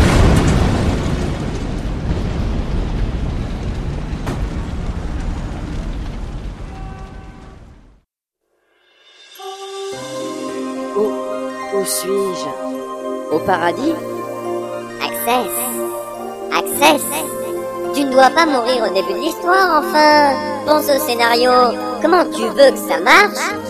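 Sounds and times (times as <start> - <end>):
grenade explosion: 0.0 - 8.0
lighter tonal musical passage: 8.9 - 23.6
speech: 11.8 - 12.7, 13.3 - 14.1, 15.2 - 15.6, 16.5 - 17.4, 18.0 - 23.6.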